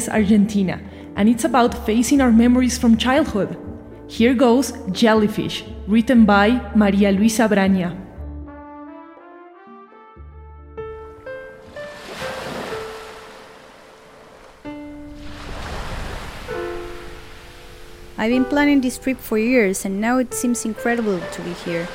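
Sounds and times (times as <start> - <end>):
speech: 0.0 - 8.0, 18.2 - 21.9
ocean waves breaking against the shore: 11.6 - 19.2, 20.2 - 21.9
wind blowing: 11.6 - 21.9.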